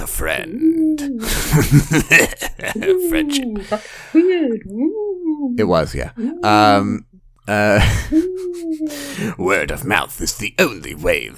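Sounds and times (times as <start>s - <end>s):
speech: 0.2s - 11.3s
person imitating a ghostly owl hoot: 0.5s - 1.6s, 2.7s - 7.0s, 7.7s - 9.3s
laughter: 1.2s - 4.3s, 7.6s - 9.2s.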